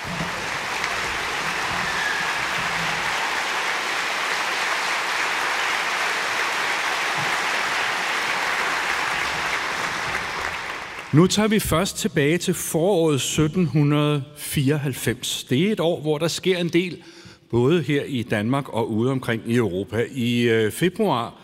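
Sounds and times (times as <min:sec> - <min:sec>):
large concert audience applauding an orchestra: 0:00.0 - 0:11.3
speech: 0:11.1 - 0:21.4.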